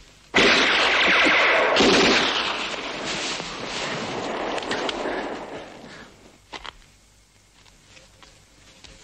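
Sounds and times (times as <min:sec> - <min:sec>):
loud gunshots with long rumbling echo: 0:00.4 - 0:06.1.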